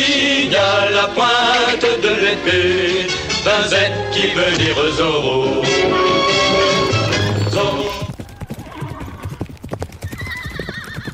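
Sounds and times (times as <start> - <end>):
speech: 0.5 - 6.3
horse galloping hooves: 6.0 - 11.1
horse whinnying: 6.1 - 11.1.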